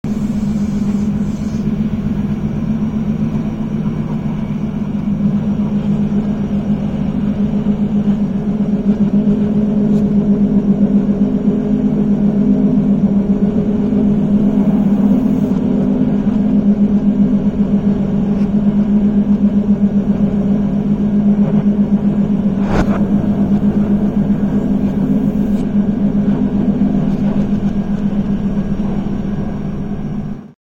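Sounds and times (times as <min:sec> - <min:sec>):
train ride rumble played backwards: 0:00.0 - 0:30.5.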